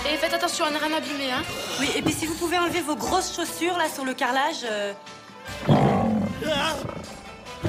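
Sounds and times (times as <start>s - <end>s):
speech: 0.2s - 5.8s
lion roaring: 5.5s - 7.6s.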